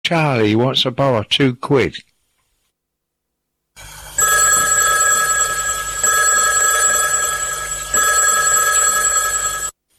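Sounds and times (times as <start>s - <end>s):
speech: 0.1s - 2.1s
telephone bell ringing: 3.8s - 9.8s.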